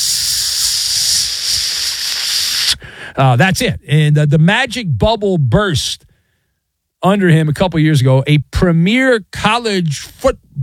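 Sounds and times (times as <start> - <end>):
food sizzling on a hot grill: 0.0 - 2.7
speech: 3.1 - 6.1, 7.0 - 10.6.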